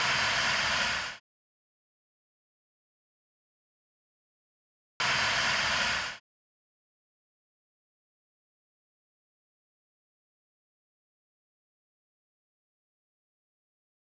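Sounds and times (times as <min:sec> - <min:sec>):
steam: 0:00.0 - 0:01.2, 0:05.0 - 0:06.2.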